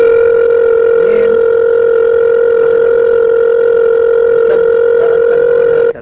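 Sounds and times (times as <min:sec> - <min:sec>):
telephone ringing with a steady electronic tone: 0:00.0 - 0:05.9.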